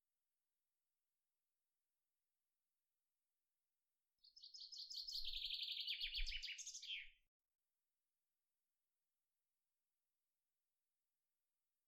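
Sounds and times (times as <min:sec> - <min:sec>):
common chaffinch Fringilla coelebs song: 0:04.2 - 0:07.2.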